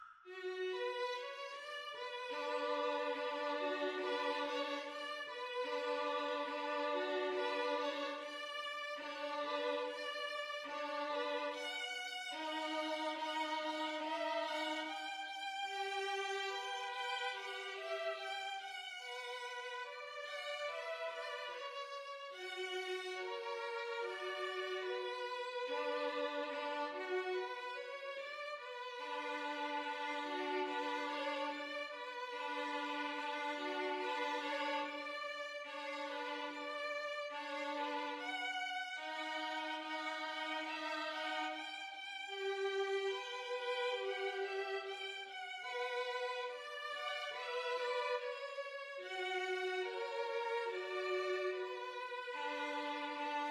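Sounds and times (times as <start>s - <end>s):
two violins playing: 0.3s - 53.5s.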